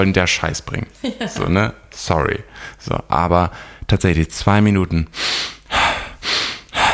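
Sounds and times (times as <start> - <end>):
speech: 0.0 - 5.5
fast breathing in through nose and out through mouth: 5.2 - 6.9.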